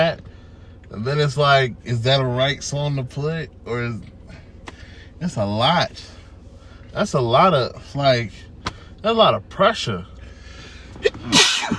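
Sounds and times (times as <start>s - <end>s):
speech: 0.9s - 4.4s, 5.2s - 6.2s, 6.9s - 10.1s, 11.0s - 11.7s
sneeze: 11.0s - 11.7s.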